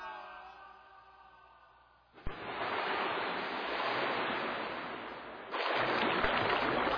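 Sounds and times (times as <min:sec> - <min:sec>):
loud continuous churning sea waves: 0:02.3 - 0:06.9
winged sky galleon crashing into the sea: 0:02.3 - 0:06.9.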